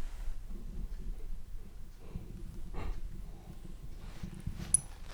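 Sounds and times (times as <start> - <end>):
dog breathing heavily into the microphone: 0.5 - 4.6.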